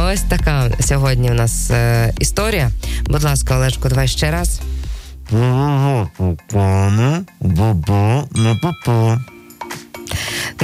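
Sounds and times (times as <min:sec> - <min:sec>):
speech: 0:00.1 - 0:09.4
man singing dong tones imitating a bell being struck: 0:05.3 - 0:10.0.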